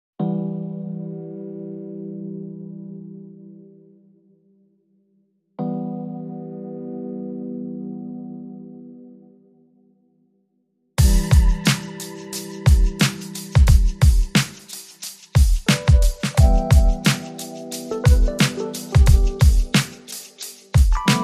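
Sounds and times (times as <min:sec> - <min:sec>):
keyboard: 0:00.2 - 0:04.7, 0:05.6 - 0:10.2, 0:11.0 - 0:21.2
drums: 0:11.0 - 0:21.2.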